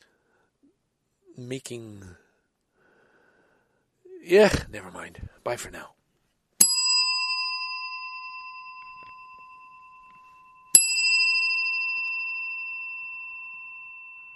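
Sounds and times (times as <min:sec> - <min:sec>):
speech: 0:01.4 - 0:02.2, 0:04.2 - 0:06.0
bell ringing: 0:06.6 - 0:14.3.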